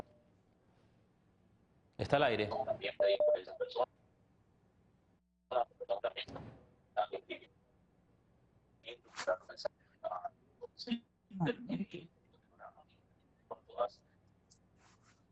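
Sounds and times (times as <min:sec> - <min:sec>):
faint steady hum: 0:00.0 - 0:15.3
speech: 0:02.0 - 0:03.9, 0:09.2 - 0:09.8, 0:10.8 - 0:12.2
television voices over a phone line: 0:02.0 - 0:03.9, 0:05.5 - 0:07.5, 0:08.8 - 0:14.6.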